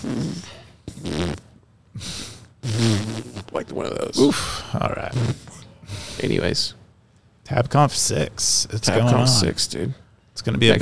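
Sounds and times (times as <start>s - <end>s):
speech: 0.0s - 0.6s, 3.6s - 5.5s, 6.2s - 6.8s, 7.5s - 10.7s
fart sound effects: 0.0s - 1.6s, 2.6s - 3.5s, 5.0s - 5.6s.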